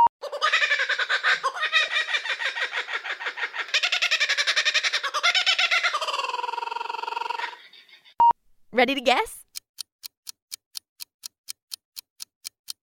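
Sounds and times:
laughing kookaburra territorial call: 0:00.2 - 0:08.2
speech: 0:08.8 - 0:09.4.

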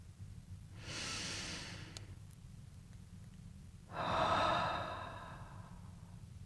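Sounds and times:
faint low hum: 0:00.0 - 0:06.4
person taking a deep breath: 0:00.8 - 0:02.1, 0:03.9 - 0:06.0.

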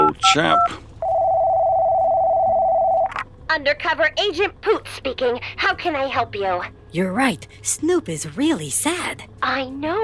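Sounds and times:
steady electronic telephone tone: 0:00.0 - 0:03.1
speech: 0:00.2 - 0:00.9, 0:03.6 - 0:10.0.

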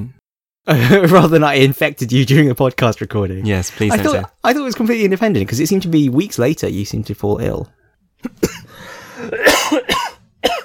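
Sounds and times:
speech: 0:00.0 - 0:10.0
person coughing in harsh bursts: 0:08.2 - 0:10.6.

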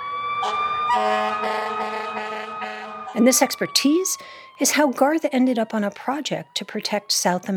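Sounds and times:
sirens wailing at a street parade: 0:00.0 - 0:07.5
blaring horn: 0:00.4 - 0:03.7
speech: 0:00.9 - 0:02.0, 0:03.2 - 0:07.5.

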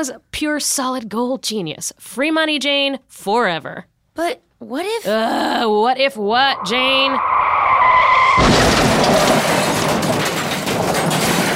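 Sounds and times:
speech: 0:00.0 - 0:08.5
bus tire screech: 0:06.3 - 0:09.9
bus crashing into pole: 0:07.4 - 0:11.5
debris rattling and scattering: 0:08.4 - 0:11.5.

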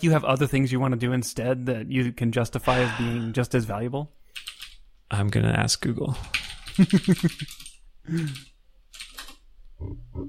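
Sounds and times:
speech: 0:00.0 - 0:04.2, 0:05.1 - 0:09.1, 0:09.8 - 0:10.2
voice imitating quick keyboard typing: 0:06.2 - 0:10.2.

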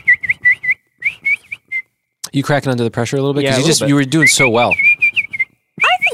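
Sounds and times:
person whistling a short tune: 0:00.0 - 0:01.9, 0:04.1 - 0:06.1
speech: 0:02.3 - 0:05.1.

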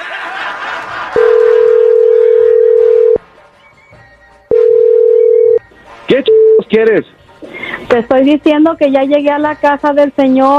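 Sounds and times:
faint laughter: 0:00.0 - 0:01.9
telephone tone while a call is placed: 0:01.2 - 0:03.2, 0:04.5 - 0:05.6
speech: 0:06.7 - 0:07.2, 0:07.9 - 0:10.5.

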